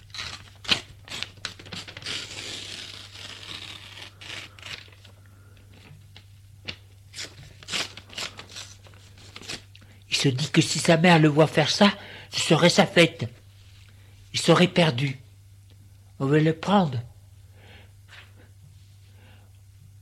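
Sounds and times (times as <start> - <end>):
newspaper page being slowly torn: 0.0 - 5.1, 7.1 - 9.7
newspaper page crinkling and rustling: 0.0 - 9.7
low steady hum: 0.0 - 20.0
speech: 10.2 - 13.4, 14.4 - 15.2, 16.2 - 17.1.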